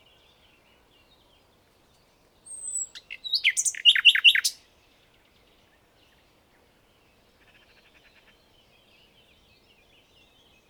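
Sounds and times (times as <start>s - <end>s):
common nightingale Luscinia megarhynchos singing: 2.4s - 4.6s.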